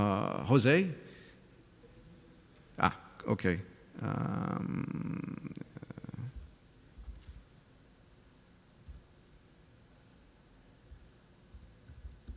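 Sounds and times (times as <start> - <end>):
speech: 0.5 - 1.0, 2.8 - 5.7
loud low rumbling purr: 4.0 - 6.5
computer keyboard typing clicks: 8.8 - 9.1, 10.9 - 12.3.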